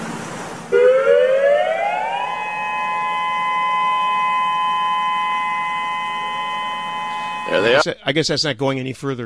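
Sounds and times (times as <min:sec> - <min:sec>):
tsunami warning siren wailing: 0:00.7 - 0:07.8
speech: 0:07.8 - 0:09.2.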